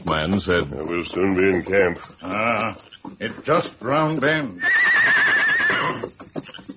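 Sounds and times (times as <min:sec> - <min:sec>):
horse snorting: 0:00.0 - 0:06.7
speech: 0:00.1 - 0:06.1
tired hungry horse whinnying in the woods at dusk: 0:01.4 - 0:06.7.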